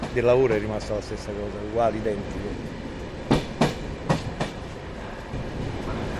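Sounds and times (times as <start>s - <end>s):
train wheels clacking over rail joints at railway station: 0.0s - 1.0s, 3.2s - 6.1s
train rolling past at railway station with steady low rumble: 0.0s - 6.1s
speech: 0.2s - 2.8s.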